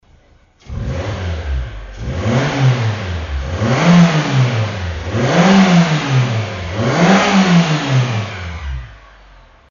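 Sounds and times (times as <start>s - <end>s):
Mazda2 Demio car muffler exhaust: 0.6s - 9.6s.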